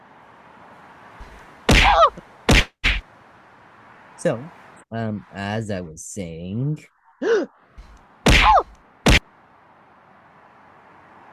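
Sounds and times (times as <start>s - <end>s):
punch-to-the-face sound effect hits: 1.7s - 3.0s, 8.3s - 9.2s
speech: 1.9s - 2.3s, 4.2s - 7.5s.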